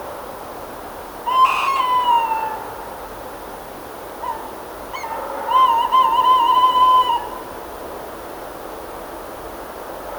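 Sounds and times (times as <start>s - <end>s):
Strix aluco calling: 1.2s - 3.1s, 4.2s - 7.7s.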